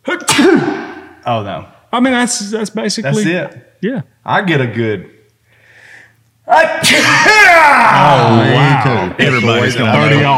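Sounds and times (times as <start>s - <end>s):
man imitating a sneeze: 0.0s - 1.0s, 6.6s - 7.5s
speech: 0.4s - 5.2s, 6.5s - 10.3s.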